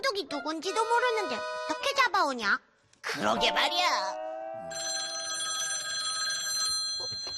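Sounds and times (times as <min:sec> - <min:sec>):
speech: 0:00.2 - 0:04.8
telephone ringing at a police station: 0:04.7 - 0:07.3.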